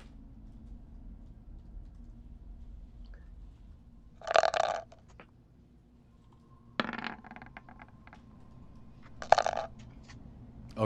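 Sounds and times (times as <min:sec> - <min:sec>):
faint low hum: 0:00.0 - 0:10.8
virtual 3D dice rolling sound effect from a tabletop role-playing game app: 0:04.2 - 0:05.0, 0:06.8 - 0:07.9, 0:09.2 - 0:09.7.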